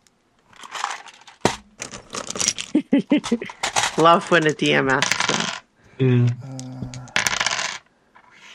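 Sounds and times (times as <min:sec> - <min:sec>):
handful of dice spilling onto a hard table: 0:00.6 - 0:02.8, 0:03.5 - 0:05.7, 0:06.6 - 0:07.9
speech: 0:03.0 - 0:06.6.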